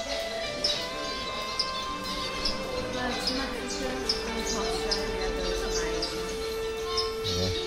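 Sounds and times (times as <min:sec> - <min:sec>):
small birds chirping, possibly finches: 0:00.0 - 0:07.6.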